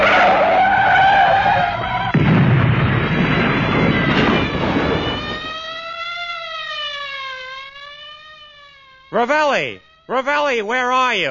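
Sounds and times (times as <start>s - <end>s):
car tires screeching in a long skid: 0.0s - 2.2s
car crashing into a lamppost: 0.0s - 5.6s
wavering tonal whine: 0.0s - 11.2s
speech: 9.2s - 11.2s.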